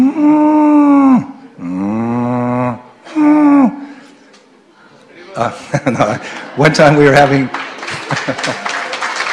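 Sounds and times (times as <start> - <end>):
person imitating a cow crying: 0.0 - 3.8
laughter: 5.2 - 9.2
speech: 5.4 - 8.7.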